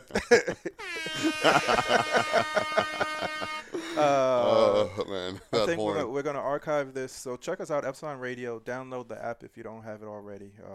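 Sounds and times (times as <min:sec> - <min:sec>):
laughter: 0:00.0 - 0:06.0
speech: 0:00.1 - 0:03.4, 0:04.0 - 0:10.7
air horn sound effect blaring: 0:00.8 - 0:04.1.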